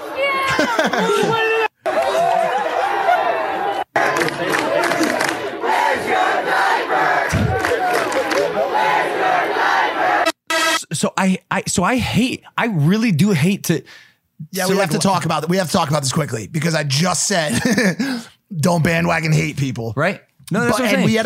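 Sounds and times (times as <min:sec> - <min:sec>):
large crowd roaring and screaming: 0:00.0 - 0:10.4
laughter: 0:00.3 - 0:03.4, 0:17.4 - 0:18.2
speech: 0:00.6 - 0:01.6, 0:11.2 - 0:21.2
many voices shouting together in a chant: 0:01.8 - 0:10.4.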